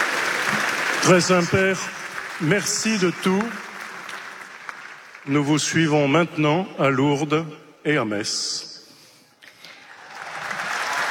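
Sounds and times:
crowd applauding at a papal event: 0:00.0 - 0:06.0, 0:09.8 - 0:11.0
speech: 0:01.0 - 0:03.6, 0:05.2 - 0:08.7.

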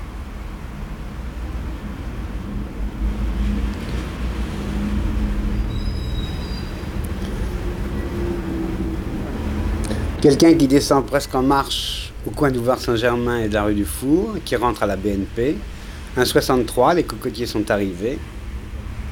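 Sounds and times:
heavy wood and coal delivery truck engine drone on a city street: 0:00.0 - 0:19.1
high-pitched squeal: 0:04.9 - 0:17.0
speech: 0:10.2 - 0:18.4.

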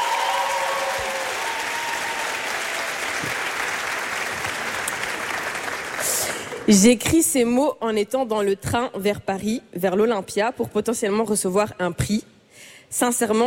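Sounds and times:
audience applauding at an awards ceremony: 0:00.0 - 0:06.7
speech: 0:06.7 - 0:12.3, 0:12.9 - 0:13.4.

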